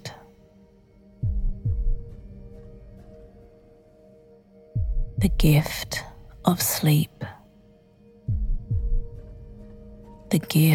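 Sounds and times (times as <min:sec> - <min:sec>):
slow deep heartbeat: 0:01.2 - 0:03.4, 0:04.7 - 0:06.4, 0:08.3 - 0:10.3
speech: 0:05.2 - 0:07.4, 0:10.3 - 0:10.7.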